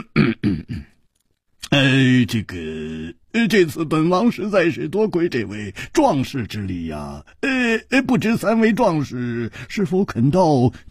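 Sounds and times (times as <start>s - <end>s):
person imitating a heavy throaty cough: 0.0s - 1.0s
speech: 1.8s - 10.9s.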